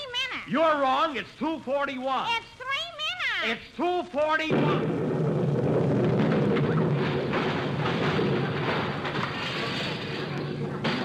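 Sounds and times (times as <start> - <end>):
speech: 0.5 - 2.6, 3.4 - 5.0
time bomb explosion as a dense rumbling roar: 4.4 - 11.0.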